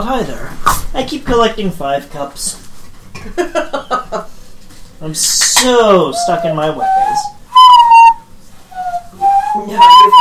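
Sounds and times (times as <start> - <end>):
speech: 0.0 - 2.6, 3.2 - 4.3, 5.0 - 7.3, 9.7 - 10.2
hollow low-pitched whistling blown through cupped hands: 6.1 - 10.2.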